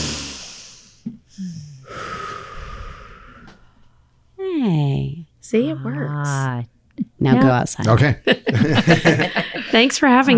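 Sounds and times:
group of people taking a deep breath together: 0:00.0 - 0:04.2
speech: 0:05.4 - 0:10.3
laughter: 0:08.2 - 0:10.3.

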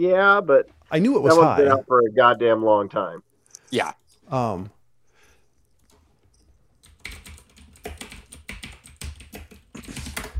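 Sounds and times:
speech: 0:00.0 - 0:04.8
loud mechanical keyboard typing: 0:06.8 - 0:10.3.

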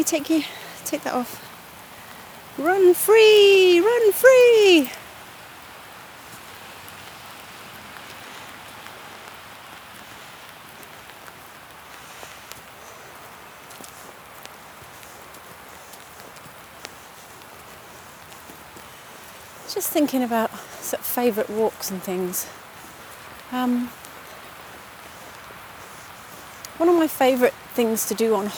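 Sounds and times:
speech: 0:00.0 - 0:01.5, 0:02.6 - 0:05.0, 0:19.8 - 0:22.6, 0:23.5 - 0:24.0, 0:26.8 - 0:28.5
heavy rain pouring down outdoors: 0:00.0 - 0:28.5.

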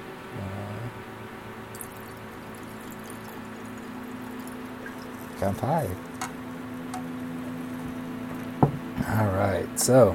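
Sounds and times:
drink pouring into a glass: 0:01.7 - 0:08.7
speech: 0:05.4 - 0:06.1, 0:09.1 - 0:10.1.

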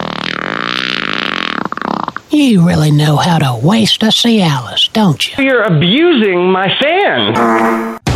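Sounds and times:
fart: 0:00.0 - 0:02.3
speech: 0:02.3 - 0:08.0.

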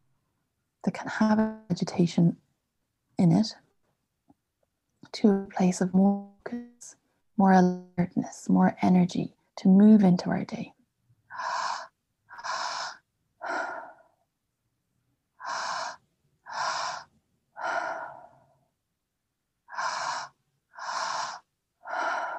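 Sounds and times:
speech: 0:00.8 - 0:02.4, 0:03.2 - 0:03.6, 0:05.1 - 0:10.8
forceful breaths in a deep breathing exercise for energy and focus: 0:11.3 - 0:14.2, 0:15.4 - 0:18.6, 0:19.7 - 0:22.3.

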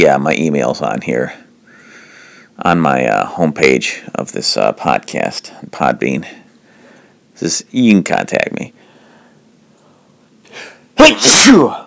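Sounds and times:
speech: 0:00.0 - 0:01.5, 0:02.6 - 0:06.4, 0:07.4 - 0:08.8, 0:10.6 - 0:11.8
person sneezing: 0:10.5 - 0:11.8.

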